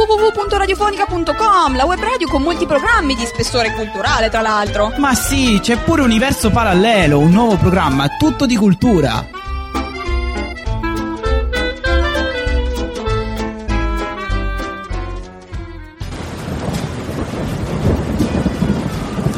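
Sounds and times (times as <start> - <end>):
tuneful music: 0.0 - 16.2
speech: 0.2 - 9.4
heavy pouring rain: 16.0 - 19.3.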